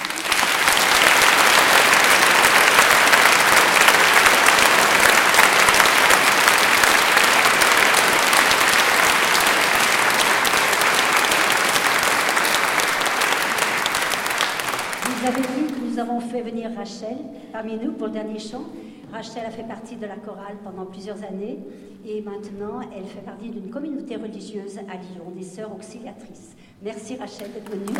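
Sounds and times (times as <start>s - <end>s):
large audience applauding a choir: 0.0s - 15.9s, 27.8s - 27.9s
speech: 16.2s - 27.9s.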